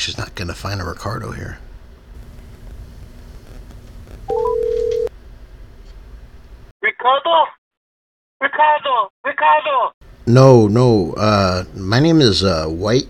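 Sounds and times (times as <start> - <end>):
speech: 0.0 - 1.7, 8.6 - 13.0
faint steady telephone line hum: 0.0 - 6.7, 10.1 - 13.0
sustained telephone line tone: 4.3 - 5.1
voice over telephone line: 6.8 - 7.6, 8.4 - 13.0.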